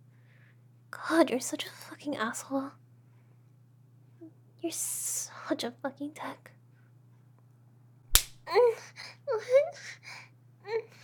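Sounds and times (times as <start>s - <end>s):
speech: 0.9s - 2.8s, 4.6s - 6.6s, 8.5s - 11.0s
slap on a person's skin: 8.1s - 8.4s.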